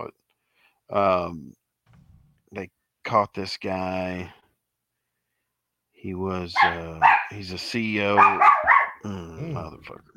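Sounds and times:
speech: 0:00.0 - 0:00.2, 0:00.9 - 0:01.6, 0:02.5 - 0:04.4, 0:06.0 - 0:10.1
small dog barking and yapping: 0:06.6 - 0:07.4, 0:08.2 - 0:09.0.

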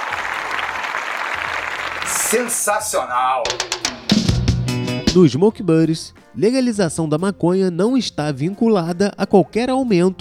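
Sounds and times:
applause: 0:00.0 - 0:02.8
speech: 0:02.1 - 0:04.1, 0:05.2 - 0:10.1.

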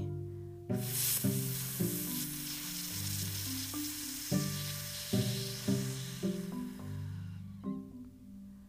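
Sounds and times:
soft music with gentle notes: 0:00.0 - 0:08.6
voice producing a sustained F fricative after an inhale: 0:00.8 - 0:07.5
inhale: 0:02.7 - 0:07.8.

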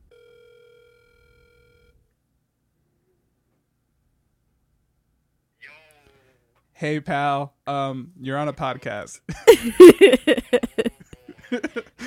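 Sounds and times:
steady electronic phone ringback tone: 0:00.1 - 0:02.0
speech: 0:06.8 - 0:10.6
laughter: 0:09.3 - 0:12.0.

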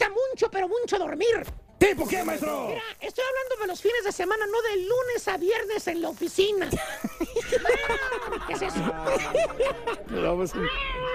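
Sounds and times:
speech: 0:00.6 - 0:11.1
laughter: 0:06.7 - 0:11.1
cat meowing: 0:10.6 - 0:11.1.

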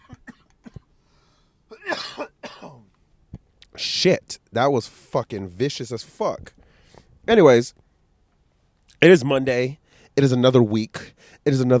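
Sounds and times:
person coughing: 0:00.0 - 0:00.9, 0:01.7 - 0:02.9
speech: 0:03.8 - 0:06.6, 0:07.3 - 0:07.8, 0:09.0 - 0:11.7.

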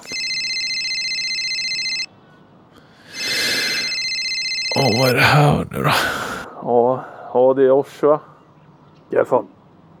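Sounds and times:
electronic telephone ringing: 0:00.0 - 0:02.1, 0:03.2 - 0:05.1
speech: 0:04.8 - 0:08.3, 0:09.1 - 0:09.6.

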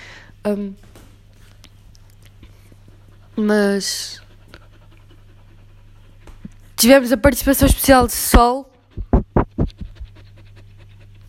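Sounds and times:
low electrical hum: 0:00.0 - 0:11.2
speech: 0:00.4 - 0:00.9, 0:03.4 - 0:04.2, 0:06.8 - 0:08.7
dog panting: 0:02.3 - 0:11.2.

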